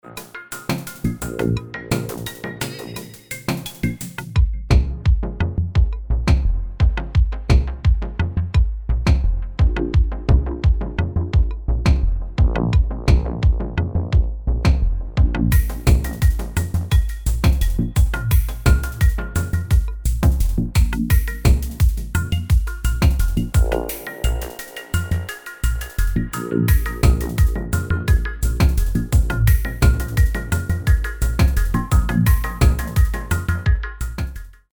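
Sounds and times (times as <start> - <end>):
electronica music: 0.0 - 34.7.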